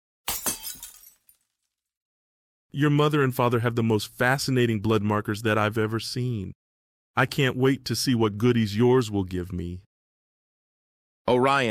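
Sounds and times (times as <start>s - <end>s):
small glass vial thrown down and smashing on the ground: 0.2s - 1.8s
glass fragments scattering: 0.3s - 1.5s
speech: 2.8s - 6.6s, 7.2s - 9.9s, 11.2s - 11.6s.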